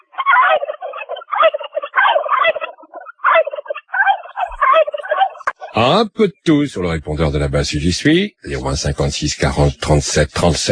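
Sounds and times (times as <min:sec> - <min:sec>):
turkey gobbling: 0:00.0 - 0:05.8
speech: 0:05.8 - 0:10.6.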